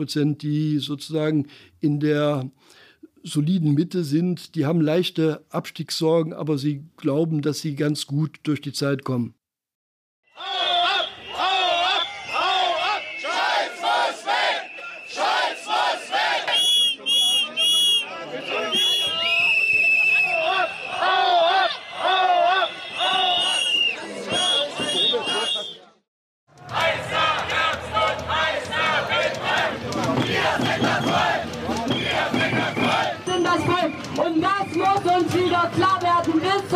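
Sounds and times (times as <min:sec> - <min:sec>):
speech: 0:00.0 - 0:09.4
loud agitated protest crowd shouting and jeering: 0:10.3 - 0:16.6, 0:18.0 - 0:25.8, 0:26.6 - 0:36.7
sharp whistles: 0:10.5 - 0:21.1, 0:21.7 - 0:26.0, 0:30.6 - 0:35.3.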